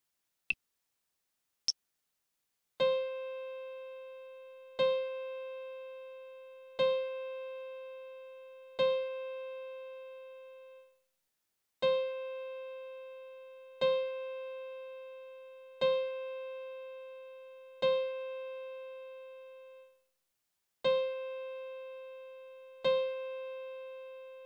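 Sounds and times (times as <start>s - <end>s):
piano in C: 2.8s - 10.8s, 11.8s - 19.8s, 20.8s - 24.4s.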